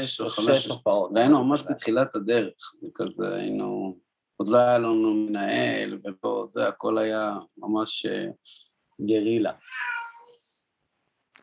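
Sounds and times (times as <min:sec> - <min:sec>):
speech: 0:00.0 - 0:10.0
cat meowing: 0:09.6 - 0:10.5.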